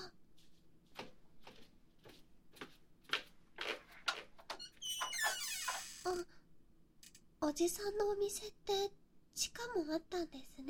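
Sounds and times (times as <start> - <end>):
shop door hinge creaking open slowly: 4.5 - 6.2
speech: 7.5 - 10.6.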